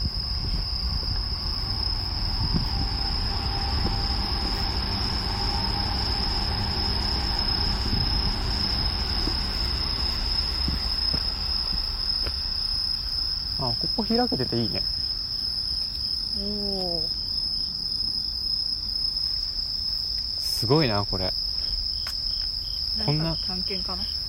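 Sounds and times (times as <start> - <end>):
train rolling past on nearby tracks: 0.0 - 15.5
crickets chirping: 0.0 - 24.2
speech: 14.1 - 15.0, 16.4 - 17.2, 20.6 - 21.4, 23.0 - 24.2.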